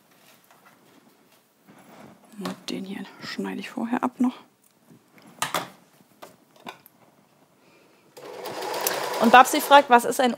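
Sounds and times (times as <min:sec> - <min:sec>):
speech: 0:02.4 - 0:04.5, 0:09.2 - 0:10.3
sewing machine with walking foot stitching: 0:08.2 - 0:09.9.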